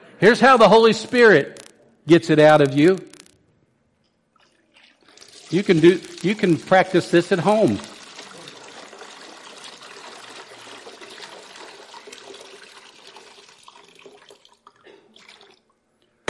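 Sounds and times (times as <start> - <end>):
speech: 0.2 - 3.1, 5.5 - 7.9
water pouring into a container: 4.4 - 15.7.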